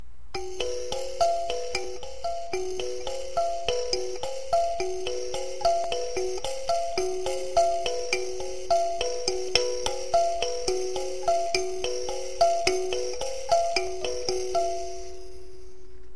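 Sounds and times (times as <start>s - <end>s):
kalimba: 0.4s - 16.0s.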